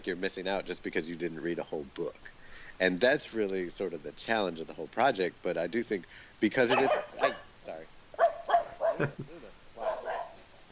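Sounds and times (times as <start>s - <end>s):
speech: 0.0s - 8.0s, 9.0s - 9.4s
dog barking: 6.7s - 7.5s, 8.2s - 9.2s, 9.8s - 10.4s.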